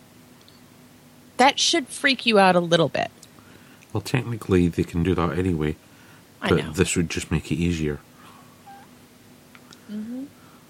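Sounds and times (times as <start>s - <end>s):
speech: 1.4s - 3.2s, 3.9s - 5.8s, 6.4s - 8.1s
electronic phone handshake dialing tones: 8.6s - 8.9s.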